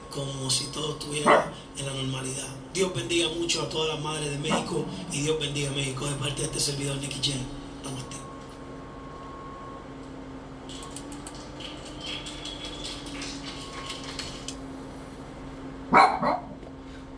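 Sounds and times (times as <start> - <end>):
quiet hum: 0.0 - 17.1
speech: 0.2 - 8.2
female dog barking: 1.2 - 1.6, 15.9 - 16.6
faint scattered clicks and rustles: 10.7 - 14.6.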